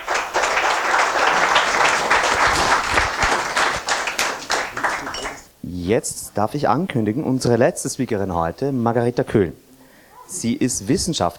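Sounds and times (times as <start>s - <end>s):
farewell applause from the audience at a net-policy evening event: 0.0s - 5.5s
speech: 5.9s - 9.6s, 10.3s - 11.3s.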